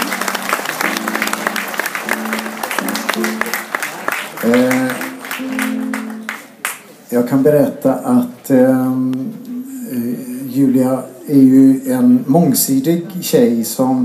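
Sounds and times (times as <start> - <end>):
audience applause at a live folk music concert: 0.0 - 7.0
speech: 4.4 - 5.6, 7.1 - 9.4, 10.6 - 14.0.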